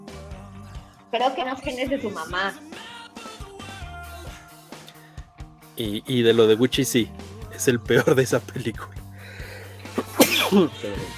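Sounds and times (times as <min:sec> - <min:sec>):
speech: 0:01.1 - 0:02.8, 0:05.8 - 0:09.0, 0:10.5 - 0:11.1
short catching breaths: 0:09.0 - 0:10.1
sneeze: 0:10.0 - 0:10.7.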